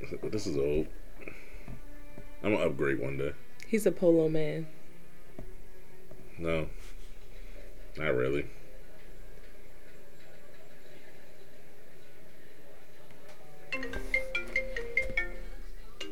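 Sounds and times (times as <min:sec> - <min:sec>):
speech: 0:00.1 - 0:01.0, 0:02.4 - 0:04.8, 0:06.4 - 0:06.9, 0:08.0 - 0:08.6
phone ringtone for incoming call: 0:13.7 - 0:16.1.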